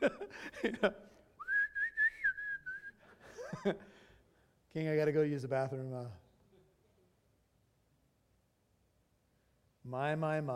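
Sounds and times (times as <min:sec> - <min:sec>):
speech: 0:00.0 - 0:01.1, 0:03.6 - 0:03.9, 0:04.7 - 0:06.2, 0:09.8 - 0:10.5
laughter: 0:00.0 - 0:01.2, 0:03.0 - 0:04.0
person whistling a tune: 0:01.4 - 0:03.1.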